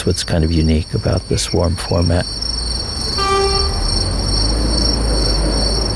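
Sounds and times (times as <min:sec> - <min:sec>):
speech: 0:00.0 - 0:02.6
heavy rumble of rolling railcars at a busy railway station: 0:02.4 - 0:05.9
high metallic whine: 0:03.0 - 0:04.5
train horn blaring at a busy railway station: 0:03.2 - 0:04.3.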